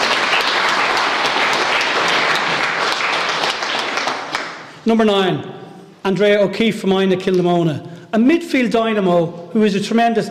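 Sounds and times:
large audience applauding: 0.0s - 4.7s
speech: 4.8s - 10.2s.

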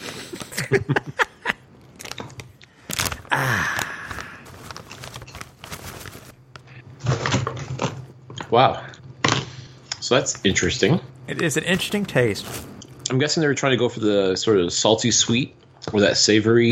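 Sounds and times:
laughter: 0.2s - 1.6s
speech: 0.6s - 1.2s, 8.5s - 8.9s, 10.1s - 16.7s
crinkly snack bag crinkling as someone struggles to open it: 1.8s - 6.6s, 11.3s - 13.0s.

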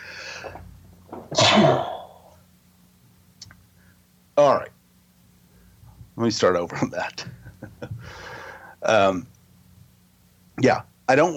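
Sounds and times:
sharp inhale: 0.0s - 0.6s, 8.0s - 8.8s
quiet breathing: 0.0s - 0.7s, 3.7s - 4.1s, 5.4s - 6.1s, 7.2s - 8.9s
speech: 0.4s - 1.9s, 6.2s - 9.3s, 10.6s - 11.3s
person sneezing: 1.3s - 2.4s
faint click: 3.4s - 3.6s.

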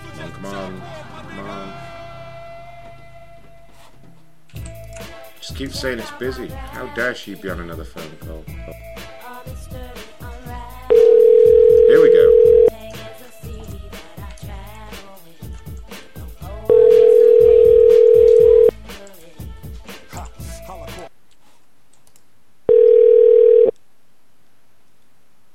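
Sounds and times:
speech: 0.3s - 1.9s, 5.6s - 9.0s
fax machine tones on a phone line: 10.9s - 12.7s, 16.7s - 18.7s, 22.7s - 23.7s.

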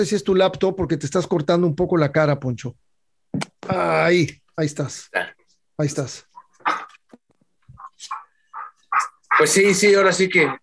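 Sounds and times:
speech: 0.0s - 2.9s, 3.7s - 6.8s, 9.0s - 10.6s
female dogs yipping and whimpering: 7.7s - 9.3s.

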